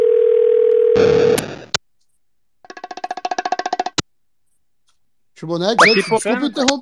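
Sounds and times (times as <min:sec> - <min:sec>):
phone dial tone: 0:00.0 - 0:01.4
speech: 0:05.4 - 0:06.7.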